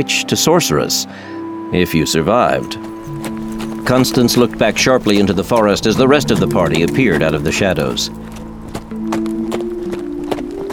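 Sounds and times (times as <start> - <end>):
speech: 0.0 - 8.3
hooves of horses walking along a difficult forest trail: 2.3 - 10.7.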